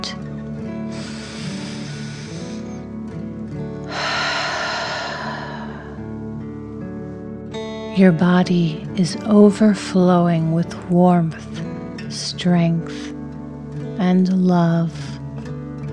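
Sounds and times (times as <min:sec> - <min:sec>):
soft music: 0:00.0 - 0:15.9
deep inhale through the nose and exhale through the mouth: 0:00.8 - 0:03.0, 0:03.8 - 0:07.9
speech: 0:08.0 - 0:11.6, 0:12.2 - 0:13.2, 0:14.0 - 0:15.1.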